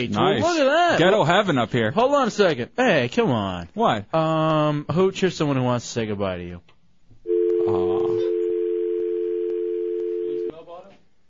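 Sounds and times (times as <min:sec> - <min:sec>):
speech: 0:00.0 - 0:06.7
loud steady telephone dial tone: 0:07.3 - 0:10.5.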